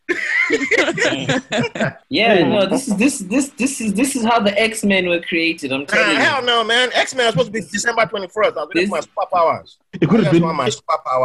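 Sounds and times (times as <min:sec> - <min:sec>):
person imitating rough voiced coughs: 0:00.1 - 0:02.0
laughter: 0:00.1 - 0:03.2, 0:05.9 - 0:11.2
speech: 0:00.5 - 0:11.2.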